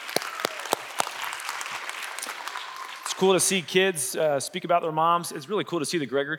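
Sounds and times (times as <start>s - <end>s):
audience applause at a morning community event: 0.0s - 3.7s
speech: 3.2s - 6.3s.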